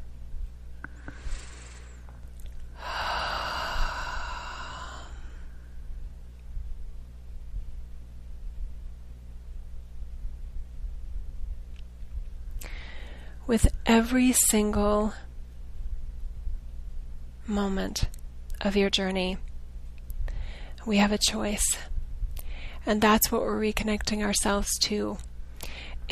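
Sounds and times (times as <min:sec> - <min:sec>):
steady low hum: 0:00.0 - 0:26.0
deep breath taken during a guided breathing session: 0:00.9 - 0:05.7, 0:12.6 - 0:13.4, 0:20.2 - 0:20.8, 0:25.6 - 0:26.0
speech: 0:13.5 - 0:15.2, 0:17.5 - 0:19.5, 0:20.8 - 0:21.9, 0:22.8 - 0:26.0.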